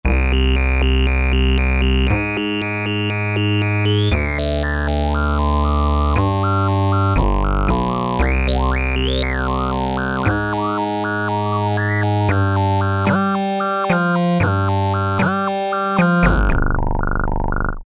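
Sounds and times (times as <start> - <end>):
synthesizer factory preset: 0.0 - 17.8.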